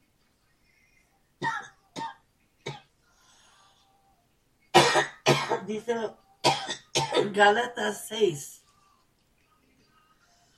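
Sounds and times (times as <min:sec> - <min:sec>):
person coughing: 0:04.8 - 0:05.7, 0:06.4 - 0:07.4
speech: 0:05.4 - 0:06.2, 0:07.2 - 0:08.6.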